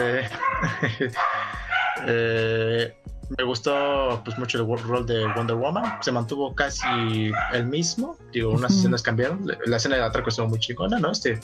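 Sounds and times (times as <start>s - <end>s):
speech: 0.0s - 1.4s, 2.0s - 11.4s
laughter: 0.0s - 11.4s
dog barking: 0.3s - 2.1s, 5.0s - 7.8s.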